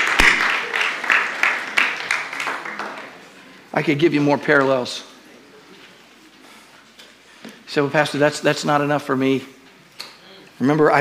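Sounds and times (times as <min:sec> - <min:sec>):
crowd clapping hands in a steady rhythm in a large room: 0:00.0 - 0:03.2
dense wash of scattered applause: 0:00.0 - 0:03.7
speech: 0:03.8 - 0:05.1, 0:07.7 - 0:09.6, 0:10.6 - 0:10.9.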